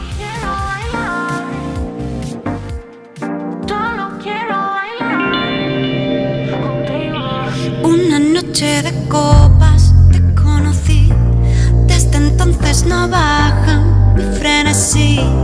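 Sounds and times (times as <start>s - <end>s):
pop song with sung vocal line played on radio: 0.0s - 15.4s
speech: 8.6s - 9.7s
steady driving beat: 9.3s - 11.4s.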